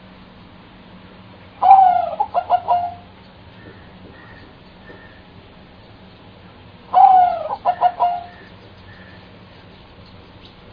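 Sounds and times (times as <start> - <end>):
bird call: 1.6 - 5.3, 6.9 - 10.6.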